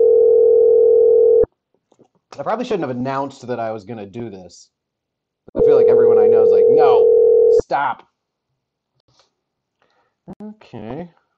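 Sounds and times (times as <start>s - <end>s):
telephone ringing tone from an outgoing call: 0.0s - 1.5s, 5.6s - 7.6s
speech: 2.4s - 4.8s, 5.7s - 8.1s, 10.3s - 11.2s.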